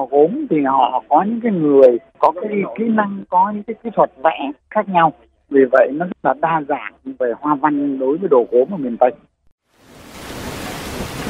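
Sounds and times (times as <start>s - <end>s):
speech: 0.0s - 9.3s
heavy rainy season rain in the Mekong Delta: 9.8s - 11.2s.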